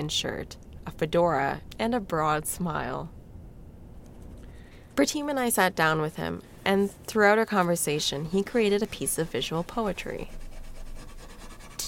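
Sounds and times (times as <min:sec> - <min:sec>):
speech: 0:00.0 - 0:03.2, 0:05.0 - 0:10.4
rubbing dry transfer lettering onto paper: 0:06.8 - 0:11.8.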